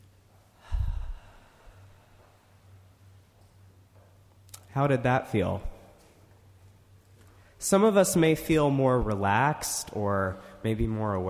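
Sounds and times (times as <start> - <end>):
single soft human breath: 0.5 - 2.6
speech: 4.8 - 5.7, 7.6 - 11.2.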